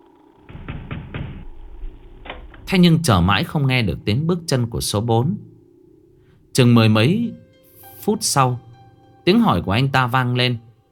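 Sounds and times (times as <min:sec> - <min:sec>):
rapid pounding knocks on a door: 0:00.5 - 0:02.8
speech: 0:02.7 - 0:05.5, 0:06.6 - 0:07.4, 0:08.0 - 0:08.6, 0:09.2 - 0:10.7.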